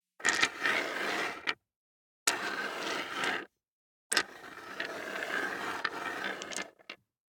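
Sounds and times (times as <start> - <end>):
six dice sliding on hard wood: 0.2 - 1.6, 2.3 - 3.5, 4.1 - 7.0.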